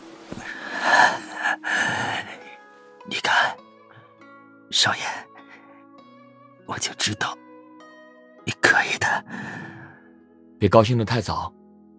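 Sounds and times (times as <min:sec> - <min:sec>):
exhausted man panting weakly on a bed: 0:00.4 - 0:02.6, 0:05.0 - 0:05.8, 0:09.2 - 0:10.0
speech: 0:04.8 - 0:05.2, 0:06.8 - 0:07.4, 0:10.6 - 0:11.6.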